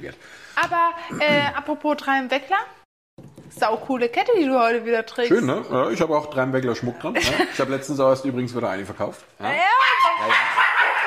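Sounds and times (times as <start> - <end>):
speech: 0.0 - 2.8, 3.6 - 10.6
dogs barking and yapping: 9.6 - 11.0.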